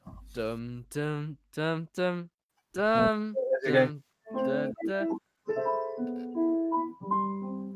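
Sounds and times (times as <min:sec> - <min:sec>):
speech: 0:00.4 - 0:06.4
voice imitating an acoustic guitar riff: 0:00.9 - 0:05.2.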